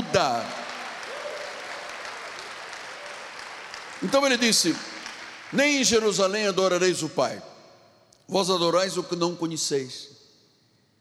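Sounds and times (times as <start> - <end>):
audience applauding: 0.0 - 6.6
speech: 4.0 - 7.5, 8.3 - 10.2.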